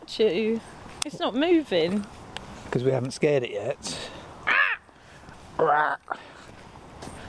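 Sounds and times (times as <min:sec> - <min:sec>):
speech: 0:00.1 - 0:04.1, 0:05.6 - 0:06.3
person imitating harsh crow caws: 0:04.4 - 0:04.9, 0:05.6 - 0:06.2.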